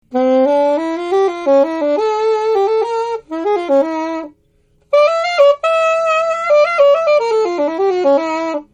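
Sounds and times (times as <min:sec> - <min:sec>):
baritone saxophone: 0:00.0 - 0:08.7.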